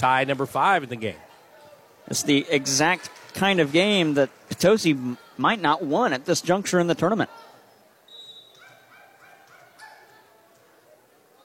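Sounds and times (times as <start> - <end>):
speech: 0.0 - 1.3, 2.1 - 7.4
small dog barking in a crowded gym: 8.4 - 10.4.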